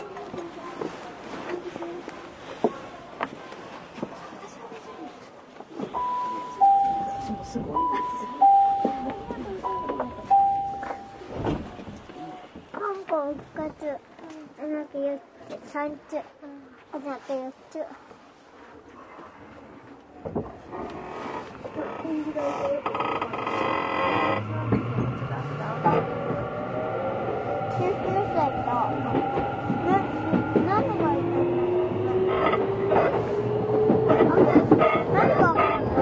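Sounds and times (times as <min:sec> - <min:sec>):
express commuter train rolling rumble: 0:00.0 - 0:16.2, 0:19.3 - 0:36.0
announcement voices inside an express commuter train: 0:05.8 - 0:11.9, 0:24.4 - 0:33.2, 0:34.0 - 0:36.0
express commuter train door chime: 0:05.9 - 0:11.6
Tokyu 6000 series express commuter train motor whining as the train accelerates: 0:20.8 - 0:36.0.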